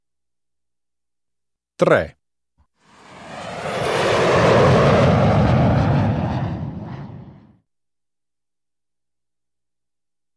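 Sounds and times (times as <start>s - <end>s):
speech: 1.8s - 2.2s
airplane engine roaring past: 2.8s - 7.6s.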